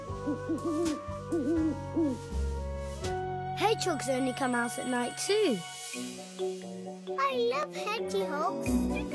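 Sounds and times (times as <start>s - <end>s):
owl hooting: 0.0s - 2.4s
speech: 0.3s - 2.4s, 3.0s - 9.1s.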